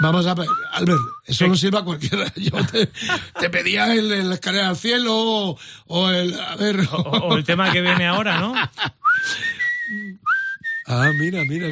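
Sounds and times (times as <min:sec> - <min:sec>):
person whistling a short melodic phrase: 0:00.0 - 0:01.3, 0:09.0 - 0:11.7
speech: 0:00.0 - 0:10.3, 0:10.9 - 0:11.7
laughter: 0:02.0 - 0:03.9, 0:06.7 - 0:09.4.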